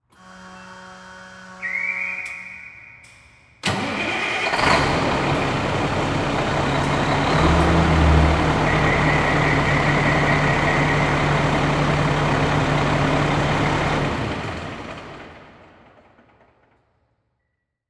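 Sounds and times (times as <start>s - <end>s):
fire truck starting up and shutting off in a fire station garage: 3.6s - 16.8s.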